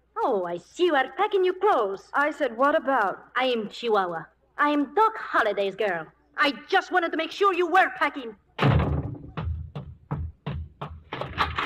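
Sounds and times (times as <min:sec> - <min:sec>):
speech: 0:00.2 - 0:08.7
door slamming shut: 0:08.6 - 0:09.6.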